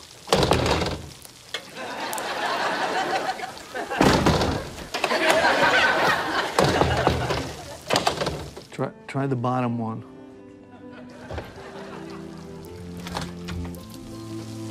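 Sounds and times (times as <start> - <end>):
locked door being yanked, thudding: 0.3 - 1.2, 4.0 - 5.4, 6.5 - 8.7
laughter: 1.6 - 7.9, 10.6 - 12.7
speech: 9.2 - 10.1.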